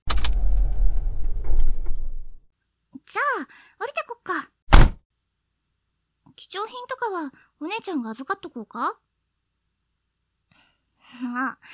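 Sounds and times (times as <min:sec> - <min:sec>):
car mechanical clicks and clunks as it settles into park: 0:00.0 - 0:02.4
car engine rumbling low and steady: 0:00.1 - 0:02.4
speech: 0:03.1 - 0:04.6, 0:06.4 - 0:09.0, 0:11.1 - 0:11.7.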